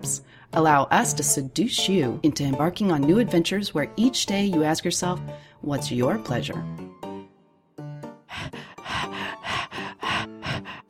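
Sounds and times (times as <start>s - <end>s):
speech: 0.0s - 7.0s
heavy rapid breathing: 8.1s - 10.8s
low drawn-out sigh: 8.3s - 10.8s
panting moans: 8.3s - 10.8s.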